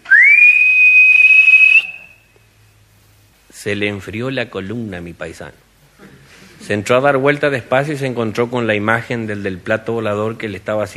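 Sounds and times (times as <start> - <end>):
eerie ghostly whistle over a breathy hiss: 0.0 - 2.2
speech: 3.6 - 5.7, 6.7 - 10.9.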